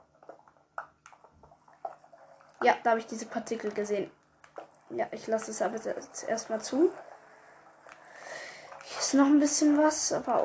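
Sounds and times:
water dripping from above in a video game: 0:00.0 - 0:10.4
speech: 0:02.6 - 0:04.2, 0:04.9 - 0:07.0, 0:09.1 - 0:10.4.

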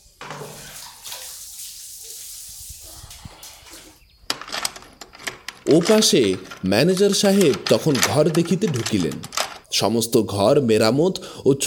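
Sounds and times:
water scooped with a small pot from iron jars into a bucket for bathing: 0:00.2 - 0:04.0
speech: 0:05.7 - 0:11.6.

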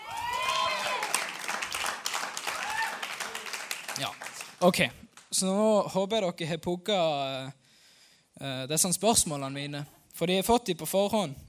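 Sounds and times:
audience cheers and whoops: 0:00.0 - 0:01.5, 0:02.3 - 0:03.6
audience applause: 0:00.0 - 0:04.6
speech: 0:04.0 - 0:07.6, 0:08.4 - 0:11.4.

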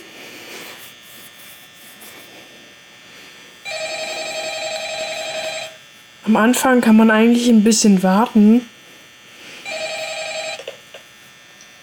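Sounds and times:
faint humming background: 0:00.0 - 0:11.8
telephone ringing in a night-shift horror video game: 0:03.6 - 0:05.8, 0:09.6 - 0:10.9
speech: 0:06.3 - 0:08.7.

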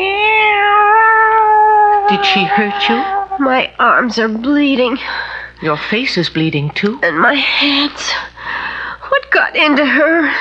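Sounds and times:
cat yowling in a fight in a kitchen: 0:00.0 - 0:03.8
speech: 0:02.1 - 0:08.3, 0:09.4 - 0:10.3.

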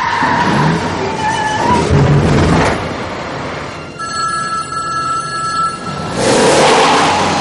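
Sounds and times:
heavy garbage truck engine roaring: 0:00.0 - 0:07.3
telephone ringing: 0:04.0 - 0:06.1.

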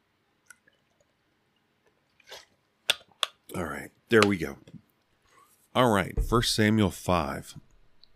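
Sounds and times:
person taking a quiet sip of water: 0:01.9 - 0:02.6
speech: 0:03.6 - 0:04.8, 0:05.8 - 0:07.7.

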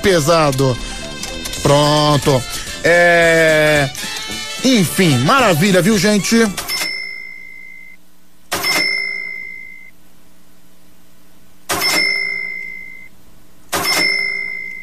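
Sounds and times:
speech: 0:00.0 - 0:00.9, 0:01.6 - 0:06.6
cash register bell dinging: 0:06.6 - 0:07.8, 0:08.5 - 0:09.9, 0:11.7 - 0:13.1, 0:13.7 - 0:14.8.

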